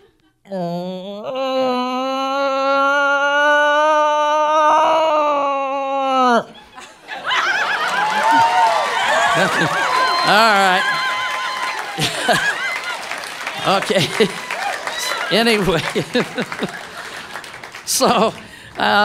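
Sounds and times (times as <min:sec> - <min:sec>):
speech: 0:00.5 - 0:01.5, 0:09.6 - 0:10.9, 0:12.3 - 0:12.5, 0:13.6 - 0:14.4, 0:15.3 - 0:16.8, 0:17.9 - 0:19.0
person imitating a cow moose call: 0:00.6 - 0:06.5
people chattering: 0:06.4 - 0:19.0
people laughing: 0:06.5 - 0:19.0.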